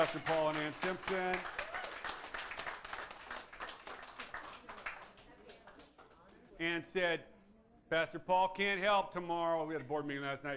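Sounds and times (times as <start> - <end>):
speech: 0.0 - 1.6, 6.6 - 7.3, 7.9 - 10.5
crowd applauding: 0.0 - 6.2.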